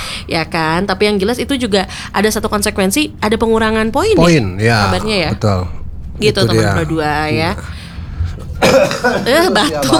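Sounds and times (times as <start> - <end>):
speech: 0.3 - 7.8, 8.6 - 9.9
person coughing: 8.5 - 9.9.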